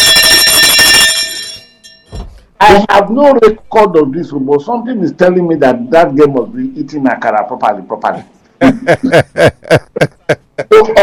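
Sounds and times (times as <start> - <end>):
hand bell rung in celebration: 0.0 - 2.2
speech: 2.7 - 11.0
laughter: 8.6 - 11.0.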